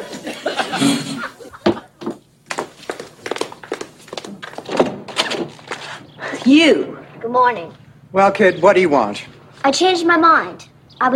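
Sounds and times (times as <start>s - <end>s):
people chuckling: 0.0s - 2.0s
speech: 0.8s - 1.1s, 6.5s - 11.1s
door thunking open as someone answers it: 4.2s - 6.0s.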